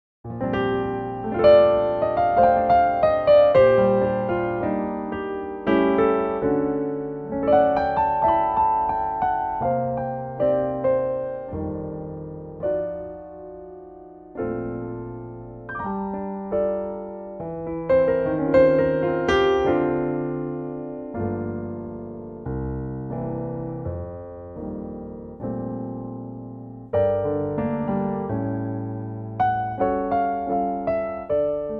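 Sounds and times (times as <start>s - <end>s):
piano verse in B flat: 0.2s - 31.7s.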